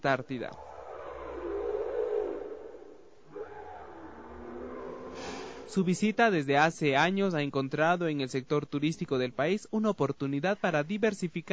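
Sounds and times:
speech: 0.0s - 0.7s, 5.7s - 11.5s
humpback whales vocalizing in the warm Pacific waters off the Ecuadorian coast: 0.5s - 5.8s.

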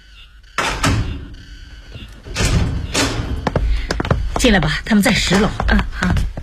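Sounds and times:
apartment door being opened for a visitor: 0.6s - 3.6s
speech: 4.4s - 6.3s.

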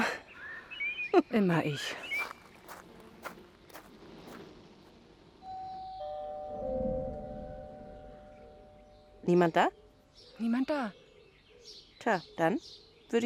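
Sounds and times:
speech: 1.2s - 2.1s, 9.3s - 9.8s, 10.4s - 11.0s, 12.0s - 13.2s
soft footsteps: 2.1s - 5.0s
doorbell chime ringing at an overgrown house: 5.5s - 9.0s.

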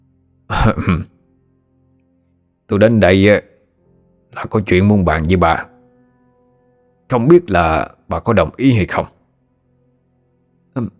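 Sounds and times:
old man giving a gruff rasping throat-clearing cough: 0.5s - 1.2s
speech: 0.7s - 1.1s, 2.7s - 3.5s, 4.3s - 5.7s, 7.1s - 9.2s, 10.8s - 10.9s.

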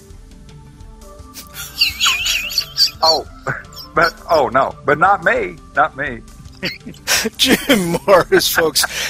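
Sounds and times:
bird chirping and warbling: 1.4s - 4.4s, 6.5s - 7.0s
laughter: 1.4s - 4.5s, 6.6s - 9.0s
speech: 3.0s - 9.0s.

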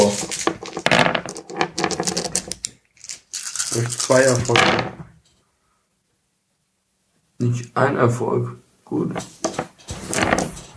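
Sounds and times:
dice rattling and tumbling during a tabletop role-playing game: 0.0s - 5.0s, 9.4s - 10.7s
speech: 3.8s - 5.1s, 7.4s - 9.4s.

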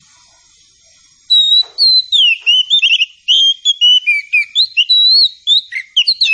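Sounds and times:
Oriental Magpie-Robin singing whistled notes: 1.3s - 6.3s.

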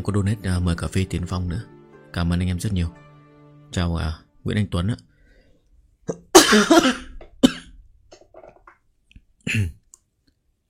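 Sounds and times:
speech: 0.0s - 3.0s, 3.7s - 5.1s, 6.1s - 7.1s
person coughing hard: 6.1s - 7.8s, 9.4s - 9.8s.

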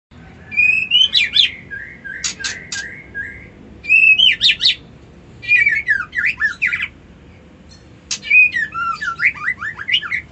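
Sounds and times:
white-eye twittering: 0.4s - 4.8s, 5.4s - 7.0s, 7.6s - 10.2s.

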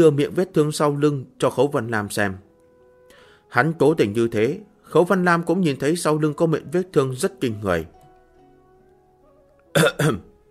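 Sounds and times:
speech: 0.0s - 2.5s, 3.5s - 8.0s, 9.8s - 10.3s
man's dry cough: 9.8s - 10.3s.

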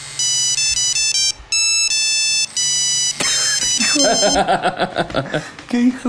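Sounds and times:
mobile phone ringing with electronic beeping melody: 0.0s - 4.6s
laughter: 3.2s - 5.7s.

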